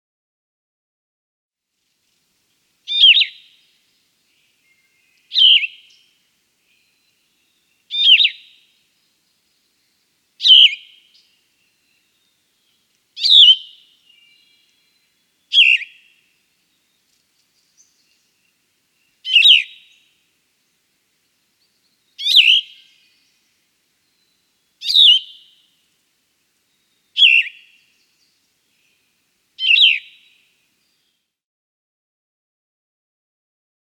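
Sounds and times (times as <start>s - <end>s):
Yellow-throated Vireo: 2.9s - 20.2s, 21.2s - 25.6s, 26.6s - 31.0s.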